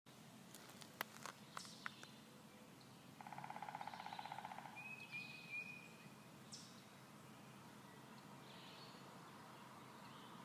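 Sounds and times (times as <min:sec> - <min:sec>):
steady background noise: 0:00.1 - 0:10.4
woodpecker rapid buzzy series of pulsed notes: 0:03.2 - 0:06.8.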